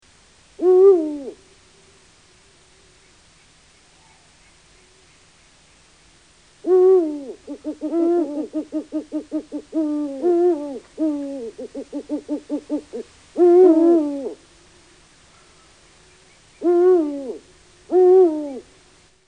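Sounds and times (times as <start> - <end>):
Eurasian eagle-owl call: 0.6 - 1.4, 6.6 - 14.4, 15.3 - 18.7.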